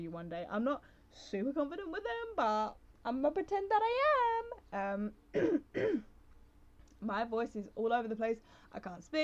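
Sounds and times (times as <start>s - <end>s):
speech: 0.0s - 6.1s, 7.0s - 9.2s
rough throat clearing: 5.3s - 6.1s.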